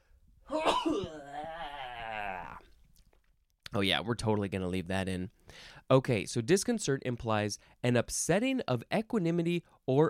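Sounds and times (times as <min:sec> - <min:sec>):
person sneezing loudly: 0:00.5 - 0:01.7
speech: 0:03.7 - 0:10.0.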